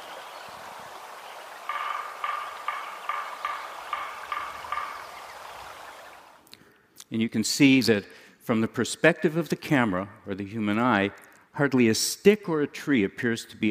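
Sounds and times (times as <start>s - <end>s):
soft hiss of forest ambience: 0.0s - 6.5s
woodpecker drumming in a forest after selective logging: 0.0s - 6.5s
speech: 7.1s - 13.6s.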